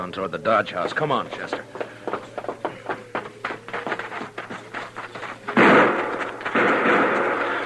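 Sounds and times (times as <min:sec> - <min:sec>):
speech: 0:00.0 - 0:01.8
rapid string of sharp gunshots fired from a dock across the street: 0:05.5 - 0:07.6
heavier gun blasts echoing from a dock across the street: 0:05.6 - 0:07.6.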